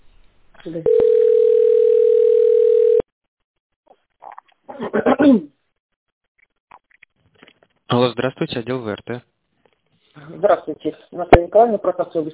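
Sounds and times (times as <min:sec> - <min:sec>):
speech: 0:00.6 - 0:01.5, 0:04.8 - 0:05.5, 0:08.0 - 0:09.3, 0:10.3 - 0:12.3
telephone line tone during a call transfer: 0:00.8 - 0:03.0.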